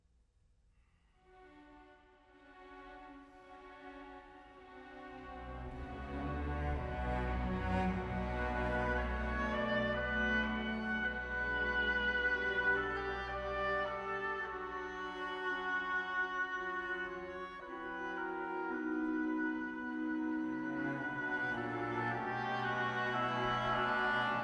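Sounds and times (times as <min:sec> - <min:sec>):
oboe: 0:05.7 - 0:24.4.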